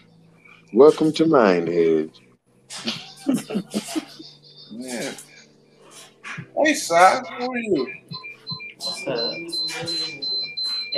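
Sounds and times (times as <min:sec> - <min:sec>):
speech: 0:00.7 - 0:04.1, 0:04.7 - 0:05.3, 0:06.6 - 0:08.0, 0:09.0 - 0:10.2
laughter: 0:02.7 - 0:05.5
smoke detector in a studio beeping: 0:06.3 - 0:10.9.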